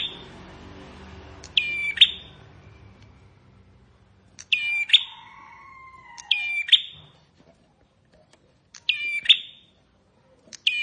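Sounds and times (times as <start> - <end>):
Bar-winged prinia buzzy song with high whistle: 0.0 - 0.5, 1.2 - 3.6, 4.4 - 5.2, 6.2 - 7.1, 8.8 - 9.8.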